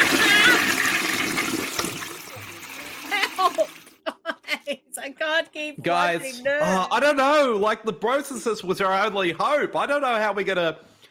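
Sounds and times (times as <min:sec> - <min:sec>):
toilet flushing: 0:00.0 - 0:04.0
speech: 0:05.1 - 0:10.9.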